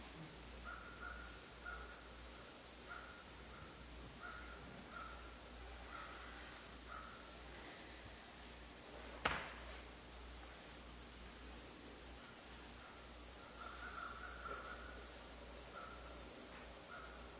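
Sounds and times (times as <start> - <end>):
soft constant hiss of open-air noise: 0.0 - 17.3
crows cawing in a meadow: 0.6 - 2.0, 2.9 - 7.3, 12.8 - 15.2, 15.8 - 16.2, 16.9 - 17.3.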